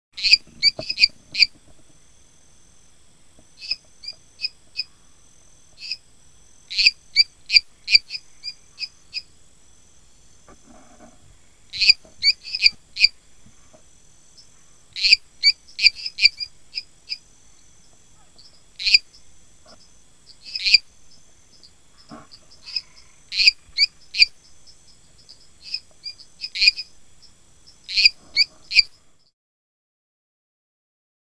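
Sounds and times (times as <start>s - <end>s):
Dendropsophus minutus tree frog calling: 0.2s - 29.3s.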